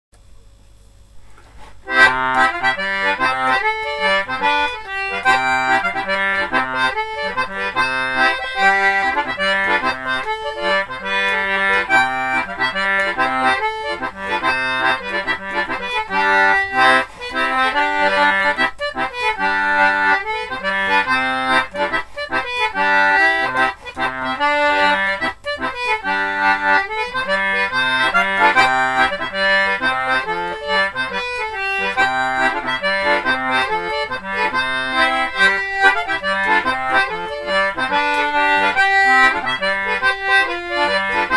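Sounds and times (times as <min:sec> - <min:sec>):
concertina playing a schottische: 0:01.9 - 0:41.3.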